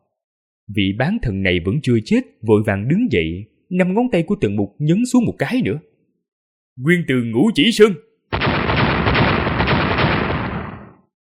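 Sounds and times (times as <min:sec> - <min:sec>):
speech: 0:00.7 - 0:05.9, 0:06.8 - 0:08.5
explosions: 0:08.3 - 0:11.1.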